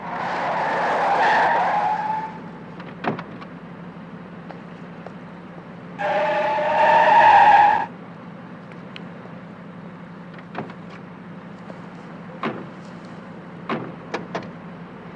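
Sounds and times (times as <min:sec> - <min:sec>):
car skidding with tire screech to a stop: 0:00.0 - 0:03.2, 0:05.8 - 0:07.9
low car engine rumble: 0:00.0 - 0:15.1.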